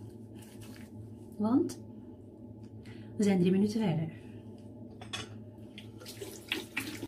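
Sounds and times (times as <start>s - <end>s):
speech: 1.4s - 1.9s, 3.2s - 4.2s
lukewarm tap water running into a sink: 5.8s - 7.0s.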